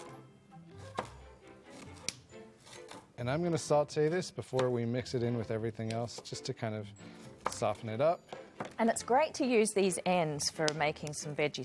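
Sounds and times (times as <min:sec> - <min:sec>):
knife slicing a shallot on a board: 0:00.7 - 0:03.1
speech: 0:03.2 - 0:11.6.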